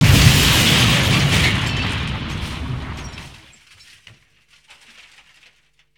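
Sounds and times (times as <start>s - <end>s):
car explosion: 0.0s - 3.6s.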